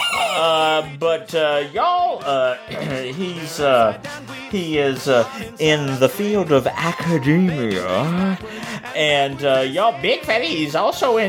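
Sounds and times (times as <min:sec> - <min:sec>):
person imitating chicken squawks, clucks and crowing: 0:00.0 - 0:00.9
speech: 0:00.4 - 0:11.2.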